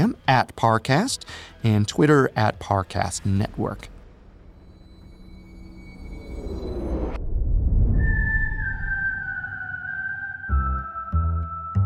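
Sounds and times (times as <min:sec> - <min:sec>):
speech: 0:00.1 - 0:03.9
low rumbling background: 0:03.2 - 0:09.2
person whistling a tune: 0:08.0 - 0:11.8.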